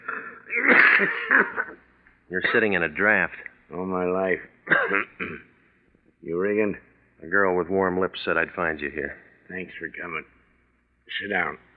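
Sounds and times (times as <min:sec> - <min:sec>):
man coughing in harsh wheezing bursts: 0:00.0 - 0:01.8, 0:04.7 - 0:05.5
speech: 0:01.0 - 0:01.7, 0:02.3 - 0:05.5, 0:06.2 - 0:10.4, 0:11.1 - 0:11.7.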